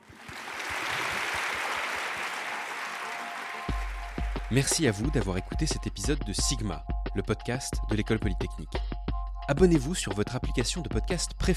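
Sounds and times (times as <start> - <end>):
room of people applauding: 0.0 - 4.8
speech: 4.5 - 8.9, 9.5 - 11.5.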